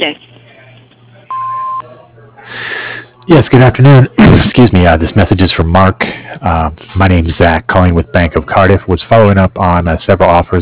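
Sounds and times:
speech: 0.0s - 0.2s, 3.3s - 10.5s
answering machine beep: 1.3s - 1.9s.

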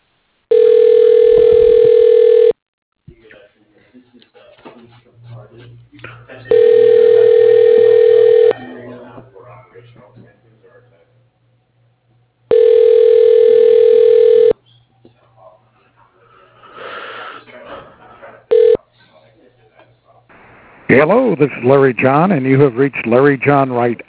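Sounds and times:
telephone ringback tone during call transfer through a directory: 0.5s - 2.6s, 6.5s - 8.7s, 12.5s - 14.6s, 18.5s - 18.8s
faint noise: 3.0s - 12.4s, 14.5s - 24.0s
speech: 21.0s - 24.0s.

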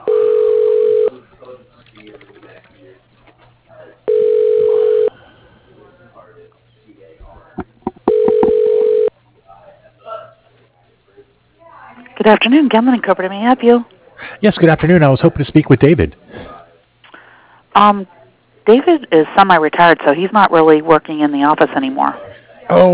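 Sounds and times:
telephone system ringing an extension: 0.0s - 1.2s, 4.1s - 5.2s, 8.0s - 9.1s
speech: 12.2s - 16.2s, 17.8s - 22.9s.

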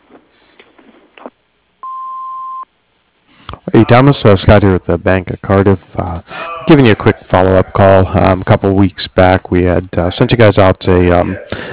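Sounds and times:
answering machine beep: 1.8s - 2.6s
speech: 3.8s - 11.7s.

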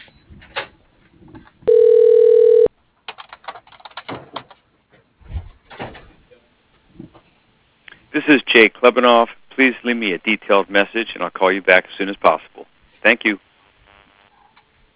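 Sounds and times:
telephone line electronic ring tone while call is transferred to voicemail: 1.7s - 2.7s
speech: 8.2s - 13.5s.

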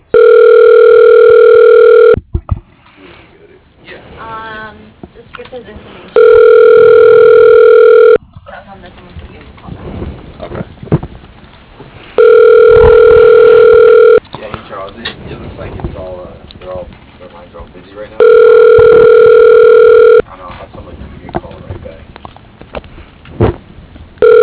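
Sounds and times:
telephone call-connecting tone from an automated directory: 0.1s - 2.2s, 6.2s - 8.2s, 12.2s - 14.2s, 18.2s - 20.2s, 24.2s - 24.4s.

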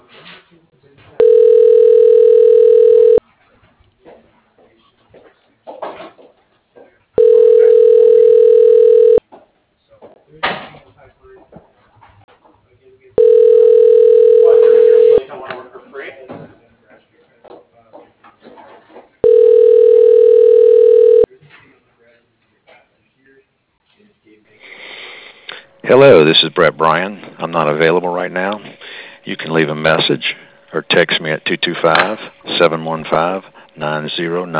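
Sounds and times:
telephone ringback tones during call transfer to voicemail: 1.2s - 3.2s, 7.2s - 9.2s, 13.2s - 15.2s, 19.2s - 21.3s
speech: 25.9s - 34.5s.

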